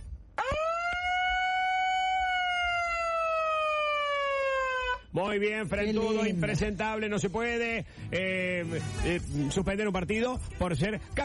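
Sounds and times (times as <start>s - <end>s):
siren sound effect wailing: 0.4s - 5.1s
speech: 5.2s - 11.2s.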